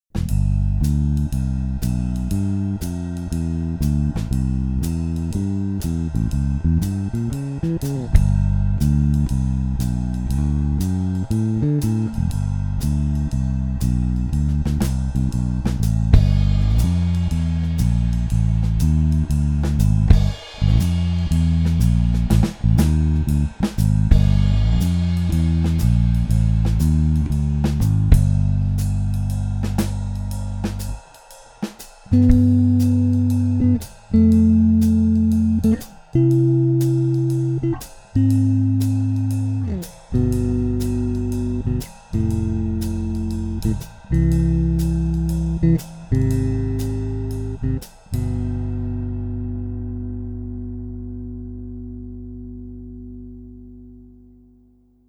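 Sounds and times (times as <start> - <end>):
jazz mix basses: 0.0 - 55.0.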